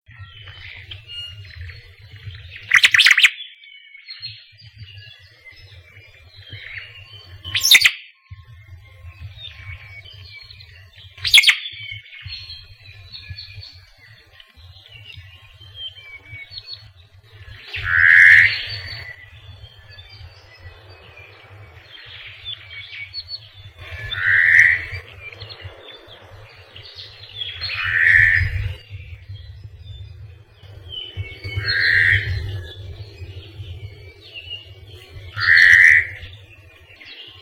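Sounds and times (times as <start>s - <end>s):
omao long call: 2.5s - 3.6s, 7.4s - 8.2s, 11.2s - 12.0s, 23.8s - 25.2s, 27.4s - 28.8s, 31.1s - 32.7s, 34.9s - 37.3s.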